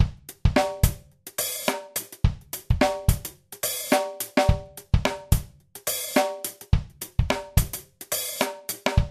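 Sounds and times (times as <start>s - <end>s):
funk drum kit: 0.0s - 9.0s.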